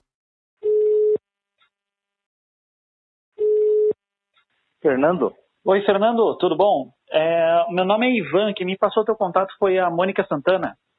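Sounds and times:
telephone ringback tone while placing a call: 0.6s - 1.2s, 3.4s - 4.0s
speech: 4.8s - 10.8s.

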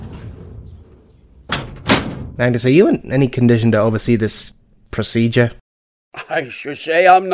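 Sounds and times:
door swinging shut with a sharp thud: 0.0s - 2.6s
speech: 2.4s - 7.3s.

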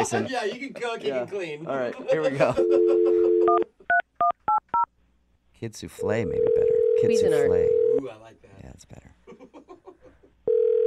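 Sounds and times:
speech: 0.0s - 3.7s, 5.6s - 9.0s
telephone dial tone: 6.4s - 7.0s, 7.7s - 8.0s, 10.5s - 10.8s.

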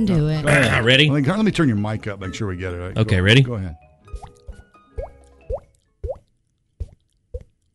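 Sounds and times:
speech: 0.0s - 4.3s
hollow water-drop-like plops made by hitting a head: 4.2s - 7.6s.

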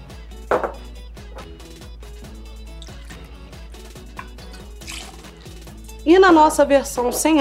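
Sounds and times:
low music: 0.0s - 7.4s
gin being poured into a glass for a cocktail: 2.7s - 5.8s
speech: 6.0s - 7.4s.

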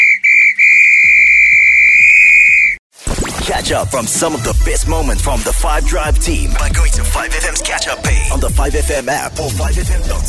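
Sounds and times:
referee's whistle blown at full time: 0.0s - 2.8s
speech: 3.6s - 10.2s.

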